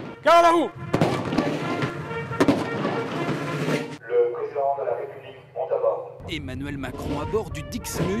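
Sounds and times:
speech: 0:00.2 - 0:00.8, 0:03.7 - 0:08.1
ceremonial cannon salute shots at the Toulon naval base in France: 0:00.8 - 0:04.0.

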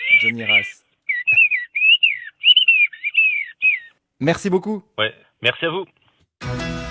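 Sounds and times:
bird singer whistling rapid imitation of birdsong: 0:00.0 - 0:03.9
speech: 0:00.2 - 0:00.8, 0:04.2 - 0:06.6.

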